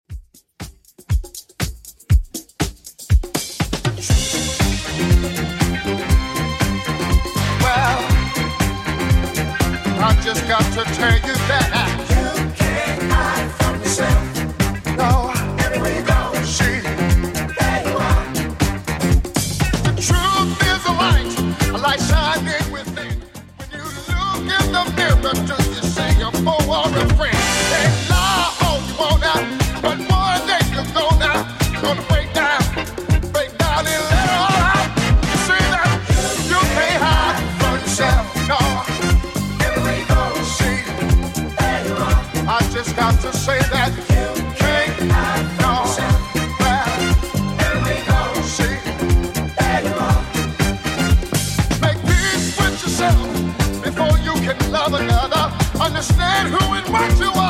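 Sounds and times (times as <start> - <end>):
70s drum beat at 120 bpm: 0.0 - 57.4.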